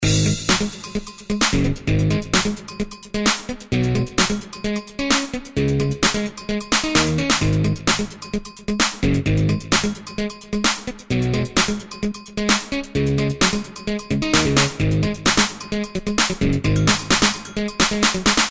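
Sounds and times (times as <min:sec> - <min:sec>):
rock dance rhythm: 0:00.0 - 0:18.5.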